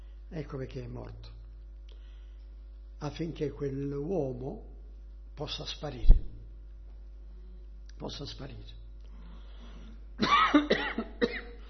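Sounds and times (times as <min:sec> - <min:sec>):
speech: 0:00.3 - 0:01.3, 0:03.0 - 0:04.7, 0:05.4 - 0:06.3, 0:08.0 - 0:08.8
person coughing dryly: 0:10.2 - 0:11.6.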